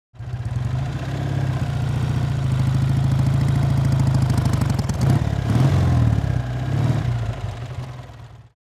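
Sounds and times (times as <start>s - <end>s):
motorcycle driving, decelerating and stopping: 0.2s - 8.6s.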